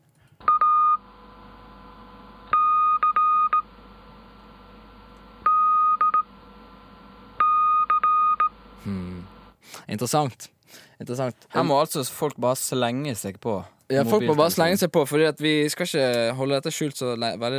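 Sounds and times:
Morse code beeps: 0.4 - 1.0, 2.5 - 3.6, 5.4 - 6.3, 7.4 - 8.6
speech: 9.9 - 17.5.

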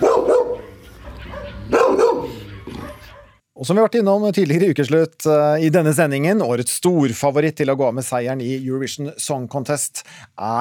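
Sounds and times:
dog in training barking: 0.0 - 3.4
speech: 3.6 - 10.6.

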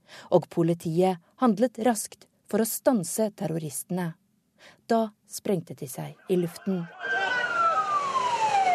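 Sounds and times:
speech: 0.3 - 7.2
ambulance siren between Atatürk Airport and the hospital: 6.4 - 8.7.

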